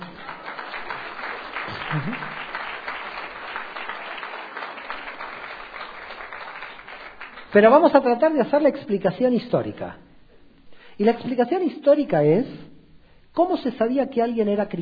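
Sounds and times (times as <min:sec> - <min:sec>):
audience applause in a room: 0:00.0 - 0:07.5
speech: 0:01.9 - 0:02.4, 0:07.5 - 0:10.1, 0:11.0 - 0:12.7, 0:13.4 - 0:14.8.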